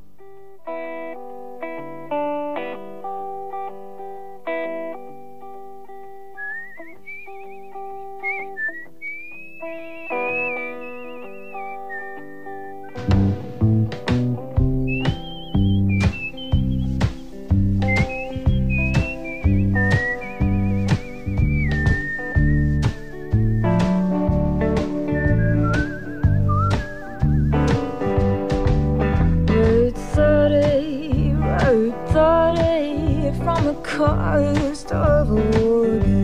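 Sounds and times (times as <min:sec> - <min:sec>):
instrumental backing with steadily pulsing accompaniment: 0:00.4 - 0:36.2
melodic whistling carrying the tune of a song: 0:06.4 - 0:13.5, 0:14.6 - 0:28.5
steadily pulsing accompaniment with regular beats: 0:09.6 - 0:29.4.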